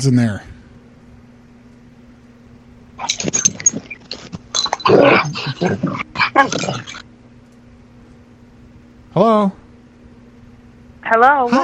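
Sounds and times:
speech: 0.0 - 0.5, 4.9 - 7.0, 9.2 - 9.6, 11.1 - 11.6
dog whimpering and barking: 3.0 - 7.0.

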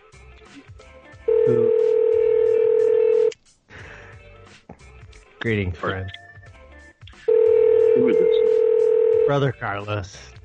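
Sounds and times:
telephone call connecting tone: 1.3 - 3.3, 7.3 - 9.3
speech: 1.5 - 1.8, 5.4 - 6.2, 9.3 - 10.4.

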